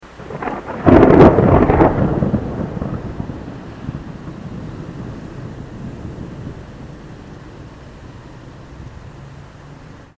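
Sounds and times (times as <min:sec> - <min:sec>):
thunder ringtone: 0:00.2 - 0:07.1.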